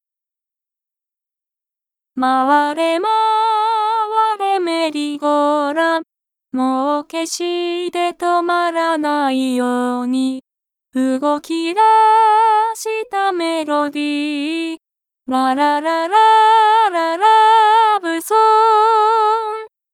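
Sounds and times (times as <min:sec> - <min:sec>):
love song: 0:02.2 - 0:19.9.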